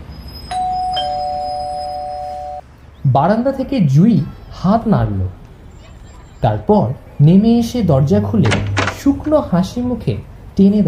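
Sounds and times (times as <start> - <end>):
electric doorbell ringing at the door of a two-storey house: 0.5 - 2.6
speech: 3.1 - 5.4, 6.4 - 10.8.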